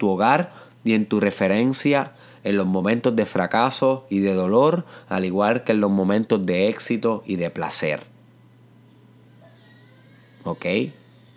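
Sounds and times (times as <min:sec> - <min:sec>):
speech: 0:00.0 - 0:08.1, 0:10.4 - 0:11.0
steady low hum: 0:00.0 - 0:11.3
young daughter crying upstairs through walls: 0:09.2 - 0:11.3.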